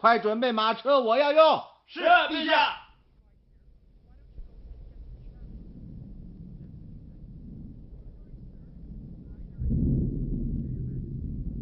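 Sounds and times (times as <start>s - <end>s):
speech: 0.0s - 2.8s
deep rumble of thunder: 3.5s - 11.5s
strong wind in a thunderstorm: 3.5s - 11.5s.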